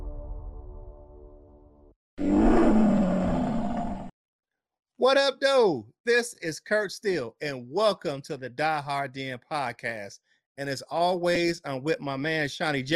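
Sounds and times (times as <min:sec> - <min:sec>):
lion roar sound effect: 0:02.2 - 0:04.1
speech: 0:05.0 - 0:12.9.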